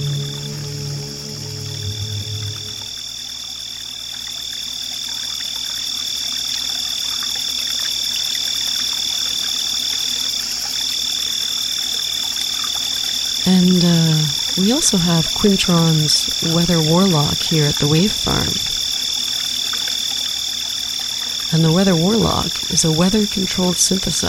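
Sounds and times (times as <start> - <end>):
low droning tone: 0.0 - 3.0
crickets chirping outdoors: 0.0 - 24.2
speech: 14.6 - 18.8, 21.5 - 24.2.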